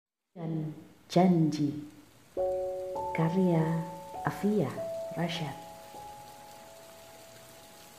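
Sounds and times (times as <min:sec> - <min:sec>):
light rain drizzling onto the ground: 0:00.3 - 0:07.9
speech: 0:00.4 - 0:02.5, 0:03.2 - 0:05.6.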